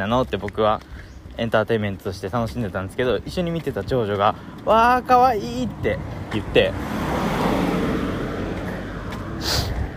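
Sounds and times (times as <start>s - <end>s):
speech: 0.0s - 7.5s
car passing by outside: 6.0s - 9.9s.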